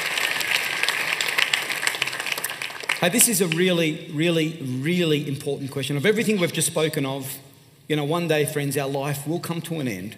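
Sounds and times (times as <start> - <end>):
audience applause for a speaker: 0.0 - 3.8
speech: 3.0 - 10.1.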